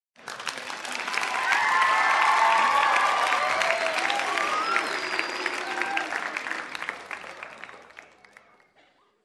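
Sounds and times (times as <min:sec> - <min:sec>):
applause: 0:00.2 - 0:08.9
crowd cheering: 0:00.5 - 0:08.4.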